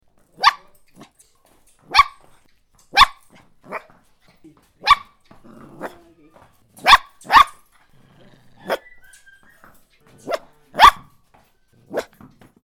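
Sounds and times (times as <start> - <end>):
puppy barking: 0.4 - 1.2, 1.8 - 4.1, 4.8 - 12.4.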